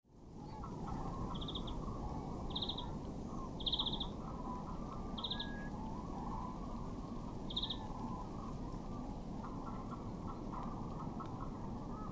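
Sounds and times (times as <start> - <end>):
heavy low-pitched background noise: 0.1 - 12.1
European greenfinch Chloris chloris giving brief quick trilled calls: 1.3 - 1.8, 2.5 - 2.9, 3.6 - 4.2, 5.2 - 5.6, 7.5 - 7.8.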